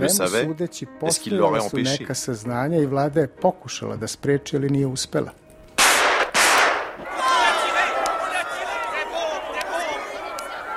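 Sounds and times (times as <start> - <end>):
speech: 0.0 - 5.4
gunshots at an assassination in Sarajevo: 5.8 - 7.0
agitated crowd voices and shouting: 6.8 - 10.7.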